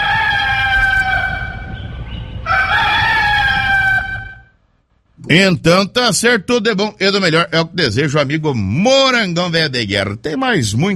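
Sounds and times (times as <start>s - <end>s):
roosters crowing: 0.0s - 4.6s
low rumbling background: 0.0s - 10.9s
speech: 5.3s - 10.9s.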